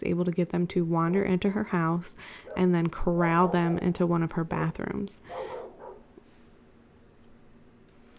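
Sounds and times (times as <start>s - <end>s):
speech: 0.0s - 5.6s
steady low hum: 0.0s - 8.1s
neighbor's dogs barking outside: 2.4s - 4.1s, 5.2s - 6.1s.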